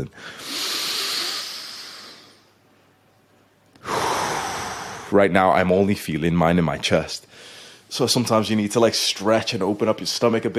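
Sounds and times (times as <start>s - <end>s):
speech: 0.0s - 0.6s, 5.1s - 10.5s
deep breath in during a breathing exercise: 0.2s - 2.5s, 3.8s - 5.1s, 7.3s - 7.9s.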